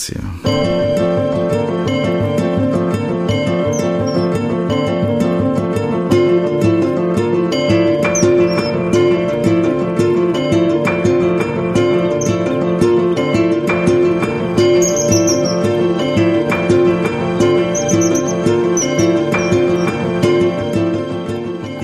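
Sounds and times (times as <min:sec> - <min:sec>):
dense steady tonal backdrop: 0:00.4 - 0:21.8
short high bird chirps: 0:03.3 - 0:04.4, 0:07.8 - 0:09.3, 0:11.8 - 0:12.7, 0:13.7 - 0:20.6.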